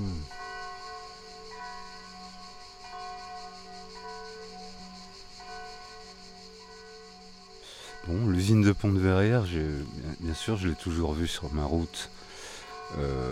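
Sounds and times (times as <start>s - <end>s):
church bells ringing in a continuous peal: 0.0s - 13.3s
speech: 8.1s - 12.2s, 12.9s - 13.3s.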